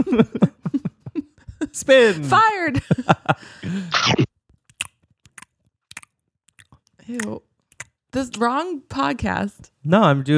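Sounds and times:
speech: 0:00.0 - 0:00.6, 0:01.8 - 0:04.3, 0:08.2 - 0:10.3
laughter: 0:00.0 - 0:04.1
voiced mouth sound: 0:03.7 - 0:06.0
wet smacking chewing of bubblegum: 0:04.0 - 0:08.0.

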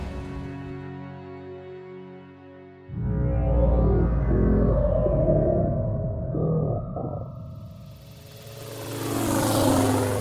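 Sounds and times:
airplane engine droning: 0:02.9 - 0:10.1.

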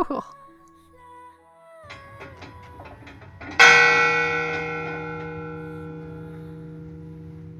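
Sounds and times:
fog bell ringing on Angel Island in San Francisco Bay: 0:03.4 - 0:07.5.

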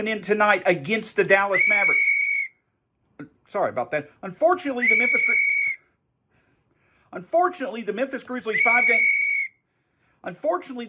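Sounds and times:
speech: 0:00.0 - 0:02.1, 0:03.2 - 0:05.5, 0:07.1 - 0:09.2, 0:10.2 - 0:10.8
referee whistle blasts: 0:01.6 - 0:02.6, 0:04.8 - 0:05.9, 0:08.5 - 0:09.6.

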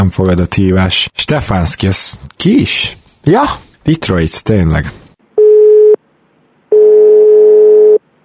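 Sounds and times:
speech: 0:00.0 - 0:05.0
telephone busy signal: 0:05.4 - 0:06.0, 0:06.7 - 0:08.0.

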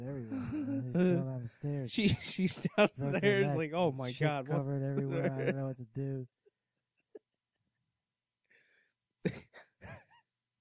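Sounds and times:
laughter: 0:00.0 - 0:06.2
speech: 0:00.5 - 0:06.4, 0:09.2 - 0:10.0
breathy inhale: 0:08.5 - 0:08.9
harsh coughs: 0:09.3 - 0:09.7.

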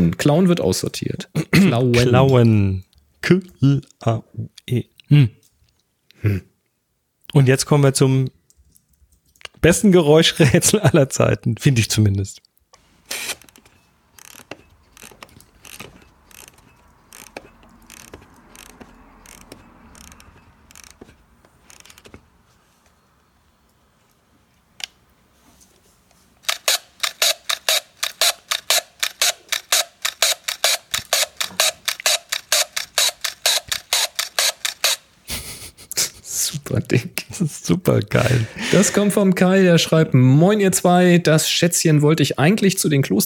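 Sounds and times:
speech: 0:00.0 - 0:05.4, 0:06.2 - 0:06.5, 0:07.3 - 0:08.4, 0:09.6 - 0:12.5, 0:37.9 - 0:43.2
film camera wound and fired without film: 0:13.0 - 0:22.2, 0:26.4 - 0:35.1.

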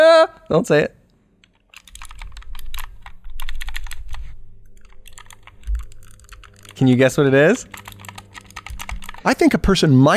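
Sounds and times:
speech: 0:00.5 - 0:01.0, 0:06.8 - 0:07.8, 0:09.2 - 0:10.1
keys clacking on a small one-handed keyboard: 0:01.4 - 0:04.0, 0:04.8 - 0:09.7.

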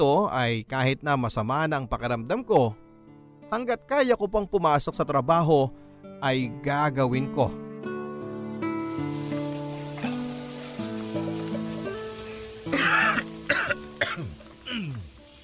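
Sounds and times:
speech: 0:00.0 - 0:02.8, 0:03.5 - 0:07.6
soft steady instrumental music: 0:00.0 - 0:15.4
person coughing: 0:12.7 - 0:15.1.

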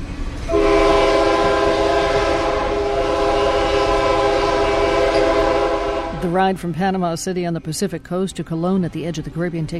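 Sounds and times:
passenger train horn on the Panama Railway: 0:00.5 - 0:06.4
speech: 0:06.3 - 0:09.7.

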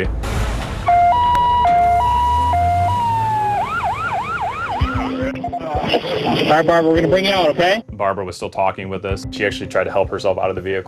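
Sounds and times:
speech: 0:00.0 - 0:00.2, 0:06.4 - 0:10.8
ambulance siren: 0:00.8 - 0:06.6.

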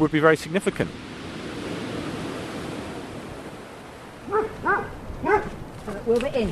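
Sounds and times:
speech: 0:00.0 - 0:01.1, 0:06.1 - 0:06.4
wind-like noise: 0:00.0 - 0:06.4
dogs barking outdoors by an old farmhouse beside a seawall: 0:04.2 - 0:05.6.

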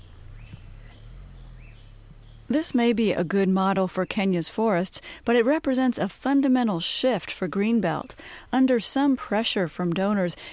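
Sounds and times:
soft calls: 0:00.0 - 0:04.1
African cricket chirping in a high-pitched trill: 0:00.0 - 0:10.5
speech: 0:02.5 - 0:10.5.

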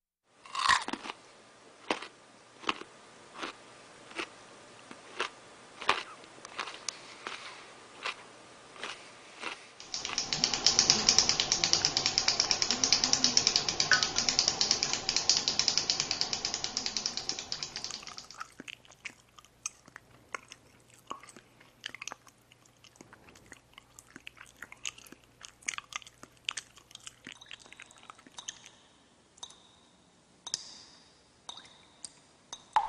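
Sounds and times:
faint hum: 0:00.3 - 0:32.8
crunchy chewing of food: 0:00.5 - 0:09.9, 0:18.1 - 0:28.8.

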